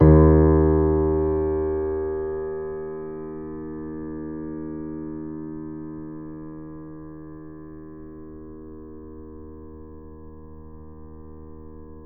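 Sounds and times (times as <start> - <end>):
grand piano note D sharp 1 played mezzo forte: 0.0 - 3.9.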